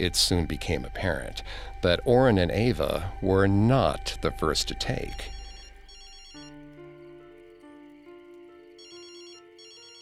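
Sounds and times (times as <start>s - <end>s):
speech: 0.0s - 5.4s
cell phone ringing with a bright electronic melody: 5.2s - 6.6s, 8.8s - 10.0s.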